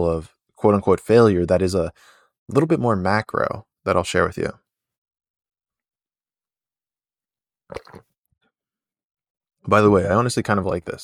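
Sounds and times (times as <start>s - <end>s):
speech: 0.0s - 4.6s, 9.6s - 11.0s
slurping sip of coffee: 7.7s - 8.1s
swallowing and mouth sounds: 7.7s - 8.2s.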